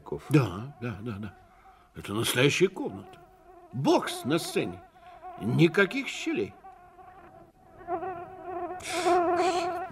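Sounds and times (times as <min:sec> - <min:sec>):
speech: 0:00.1 - 0:01.4, 0:02.0 - 0:06.6, 0:08.8 - 0:09.6
fat fly buzzing and circling: 0:02.3 - 0:09.9.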